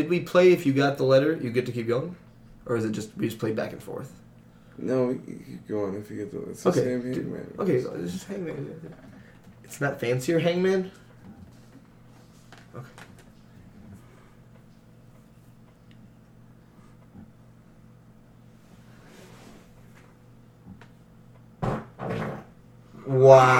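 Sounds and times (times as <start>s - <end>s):
speech: 0.0s - 4.2s, 4.8s - 9.1s, 9.7s - 11.0s, 12.8s - 13.0s, 23.3s - 23.5s
door thumping: 21.6s - 22.5s.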